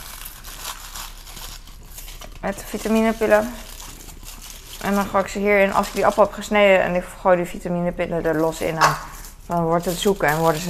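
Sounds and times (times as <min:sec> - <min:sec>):
foil being crinkled and torn while packing apples and vitamin pills: 0:00.0 - 0:07.0, 0:08.2 - 0:10.6
speech: 0:02.4 - 0:03.7, 0:04.8 - 0:10.6.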